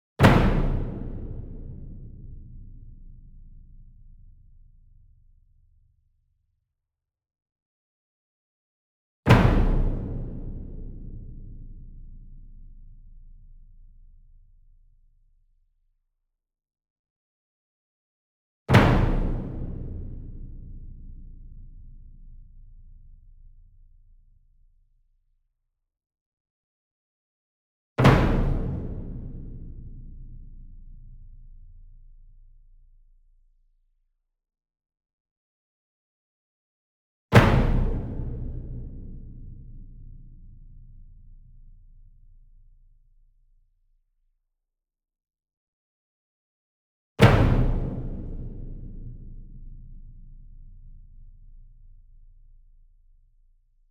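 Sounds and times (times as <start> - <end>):
66 inch single drum flam with medium hard beater: 0.2 - 3.4, 9.3 - 12.5, 18.7 - 21.8, 28.0 - 31.0, 37.4 - 40.8, 47.2 - 50.1.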